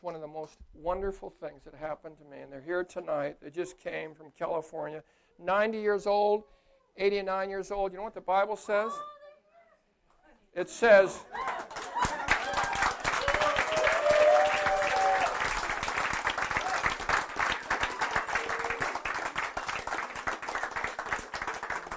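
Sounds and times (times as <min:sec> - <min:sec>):
speech: 0:00.3 - 0:09.2, 0:10.6 - 0:12.0
church congregation applause: 0:11.3 - 0:21.9.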